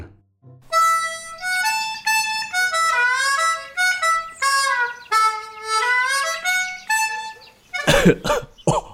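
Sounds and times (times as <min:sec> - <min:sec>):
man playing a halting melody on a mouth organ: 0:00.4 - 0:08.7
loud coughing: 0:07.8 - 0:08.9.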